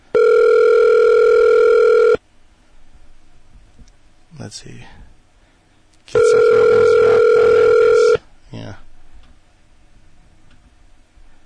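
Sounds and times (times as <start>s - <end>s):
telephone ringback tone: 0.1s - 2.2s, 6.2s - 8.2s
speech: 4.6s - 5.0s.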